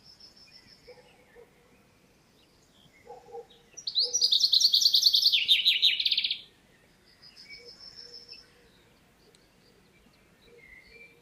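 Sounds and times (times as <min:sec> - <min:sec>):
common chaffinch Fringilla coelebs singing: 0:00.0 - 0:11.2.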